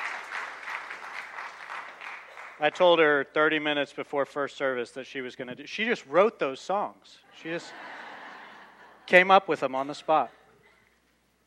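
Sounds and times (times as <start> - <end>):
audience applause at a church service: 0.0 - 2.8
speech: 2.6 - 7.9, 9.1 - 10.4
laughter: 7.3 - 9.3.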